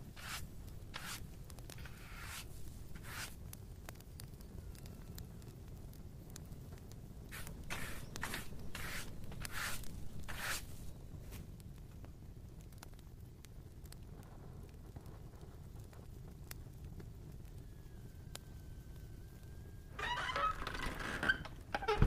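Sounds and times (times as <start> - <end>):
brighter rustling scrape: 0.0 - 3.4, 7.3 - 11.5
fire crackling gently in a room: 0.0 - 22.0.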